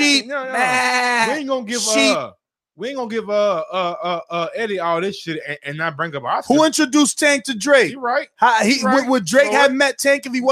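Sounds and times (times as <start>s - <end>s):
person's voice imitating a sheep bleating: 0.0s - 2.3s, 8.8s - 9.8s
speech: 0.2s - 10.5s.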